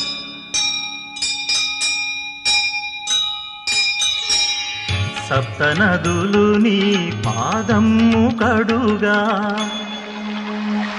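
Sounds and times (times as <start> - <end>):
temple bells ringing: 0.0 - 8.2, 9.4 - 10.9
speech: 5.3 - 9.9.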